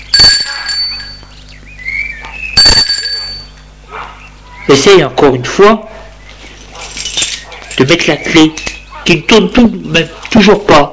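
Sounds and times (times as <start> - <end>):
doorbell ringing: 0.1 - 1.3, 2.6 - 3.5
speech: 4.7 - 5.9, 7.8 - 10.9.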